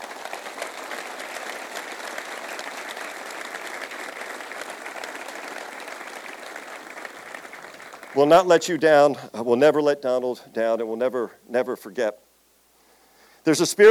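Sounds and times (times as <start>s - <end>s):
crowd applauding: 0.0s - 8.6s
speech: 8.2s - 12.2s, 13.4s - 13.9s.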